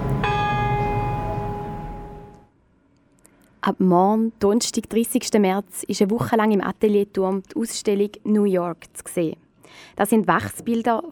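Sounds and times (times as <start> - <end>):
church bell tolling from a neighboring tower: 0.0 - 2.5
speech: 3.6 - 11.1.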